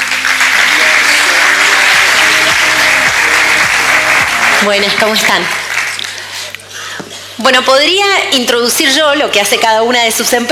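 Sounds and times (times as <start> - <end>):
audience applause: 0.0 - 6.5
speech: 4.6 - 5.6, 7.4 - 10.5.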